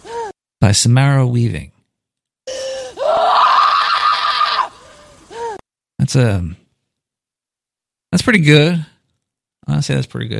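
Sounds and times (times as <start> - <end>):
woman's sharp gasping cry: 0.0 - 0.4, 2.5 - 3.2, 4.5 - 5.6
speech: 0.6 - 1.8, 6.1 - 6.6, 8.1 - 8.9, 9.7 - 10.3
woman's short scream from a horror film: 2.6 - 5.6.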